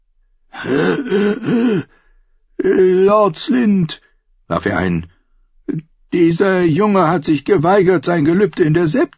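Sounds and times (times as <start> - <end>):
voiced throat clearing: 0.6 - 1.9
speech: 0.6 - 2.0, 2.6 - 9.1.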